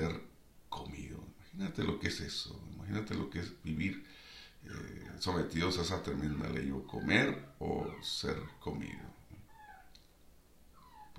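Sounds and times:
speech: 1.6 - 9.2
dog whimpering: 6.2 - 8.2, 9.4 - 10.0, 10.8 - 11.1.

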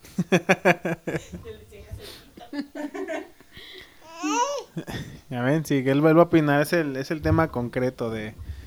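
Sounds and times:
speech: 0.2 - 2.2, 5.6 - 8.4
laughter: 3.0 - 5.0
baby babbling, squealing and cooing: 4.0 - 4.8.

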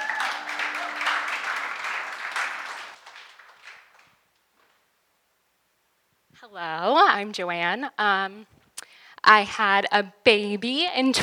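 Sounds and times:
audience applauding with dense crackling clapping: 0.0 - 4.3
speech: 6.5 - 8.6, 9.3 - 11.2.

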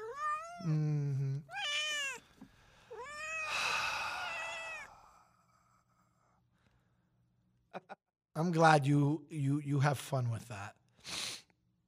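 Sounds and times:
cat meowing: 0.0 - 0.7, 1.5 - 2.3, 2.9 - 5.0
speech: 0.6 - 0.9, 8.4 - 10.8.

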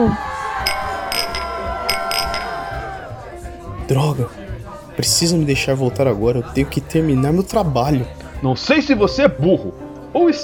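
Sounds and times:
speech: 0.0 - 0.3, 3.9 - 4.4, 5.0 - 10.4
murmuring crowd and lively chatter: 0.0 - 8.6
glasses clinking in a toast: 0.6 - 3.0.

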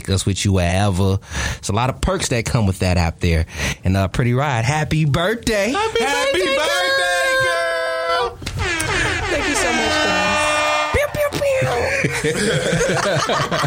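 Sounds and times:
speech: 0.1 - 6.9, 11.6 - 13.6
person voice imitating an air horn: 5.8 - 11.9
stifled laughter: 11.6 - 13.6.

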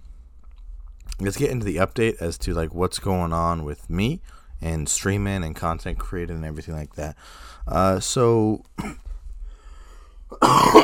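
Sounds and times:
speech: 1.2 - 9.0, 10.3 - 10.8
ill person coughing with a rough throaty sound: 8.8 - 9.1, 10.3 - 10.8.

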